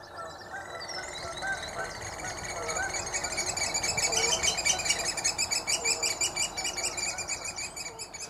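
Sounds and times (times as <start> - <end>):
chorus of oystercatchers piping: 0.0 - 8.2.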